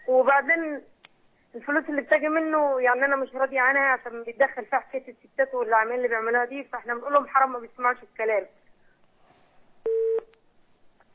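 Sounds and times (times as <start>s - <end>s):
low hiss: 0.0s - 11.1s
speech: 0.3s - 0.9s, 1.5s - 8.6s
telephone busy tone beep after a dropped call: 9.8s - 10.3s.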